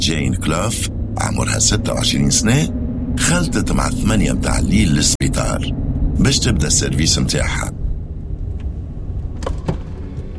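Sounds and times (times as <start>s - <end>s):
speech: 0.0s - 7.8s
car engine rumbling as a car is parked in a hospital parking lot: 0.0s - 10.3s
car door being shut: 9.4s - 10.3s.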